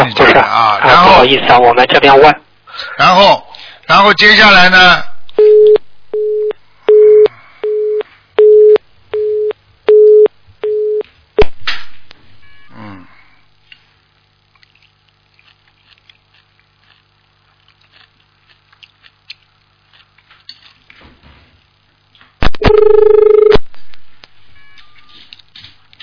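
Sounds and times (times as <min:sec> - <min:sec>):
speech: 0:00.4 - 0:05.6
telephone busy tone after phone line drops: 0:05.4 - 0:11.0, 0:22.6 - 0:23.6.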